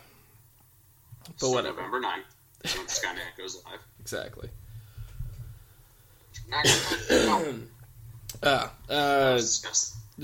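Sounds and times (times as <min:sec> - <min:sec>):
speech: 0:01.3 - 0:04.6, 0:06.4 - 0:10.2
throat clearing from phlegm after being sick: 0:06.6 - 0:07.7.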